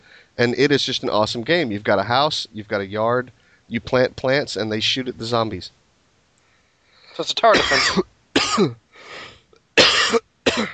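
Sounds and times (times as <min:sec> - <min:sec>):
speech: 0:00.4 - 0:05.8, 0:07.2 - 0:08.8
dry hacking coughs: 0:07.5 - 0:09.2, 0:09.8 - 0:10.7.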